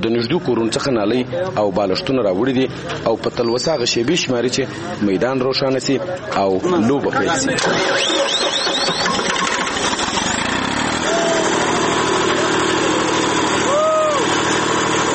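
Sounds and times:
speech: 0.0s - 9.2s
generator engine drone powering sports field lights: 7.5s - 15.1s.

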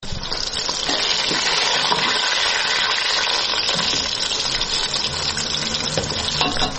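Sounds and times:
onions and meat frying in a pot for qorma in a home kitchen in Kabul: 0.0s - 6.7s.

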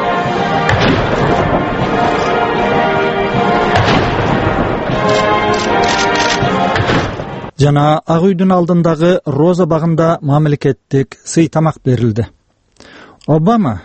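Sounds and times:
ceremonial salute cannon booms at a White House state welcome: 0.6s - 5.8s, 6.4s - 7.5s
speech: 7.6s - 13.8s.

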